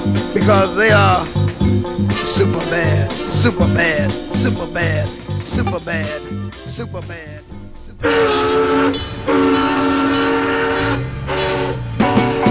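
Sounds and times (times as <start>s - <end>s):
clattering rail noise: 0.0s - 12.5s
low rolling rumble: 0.0s - 12.5s
speech: 0.4s - 7.4s, 8.0s - 9.5s
train horn blasts: 2.1s - 4.0s, 5.6s - 12.5s.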